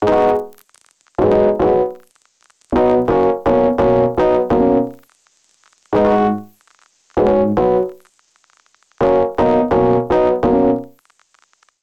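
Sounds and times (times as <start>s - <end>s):
smoky keys accompaniment in B-flat minor: 0.0s - 0.6s, 1.2s - 2.0s, 2.8s - 5.0s, 6.0s - 6.5s, 7.2s - 8.0s, 9.0s - 10.9s.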